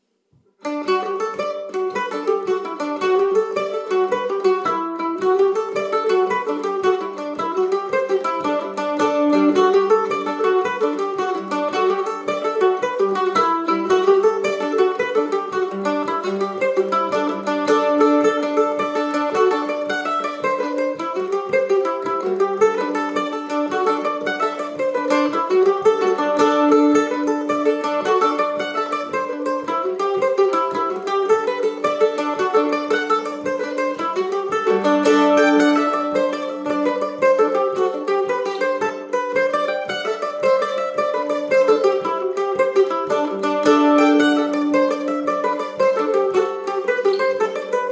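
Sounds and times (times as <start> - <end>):
Irish mandolin playing: 0.0 - 47.8.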